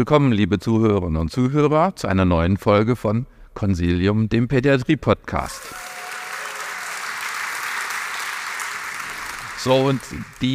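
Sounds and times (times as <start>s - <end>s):
speech: 0.0s - 5.9s, 9.6s - 10.5s
audience applause with many hands clapping: 5.6s - 10.5s.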